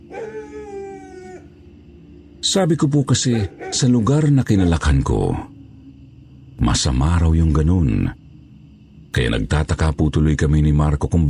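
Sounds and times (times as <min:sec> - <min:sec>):
dog howling: 0:00.0 - 0:01.8, 0:03.2 - 0:05.0
faint hum: 0:00.0 - 0:11.2
speech: 0:02.4 - 0:05.5, 0:06.6 - 0:08.2, 0:09.2 - 0:11.2.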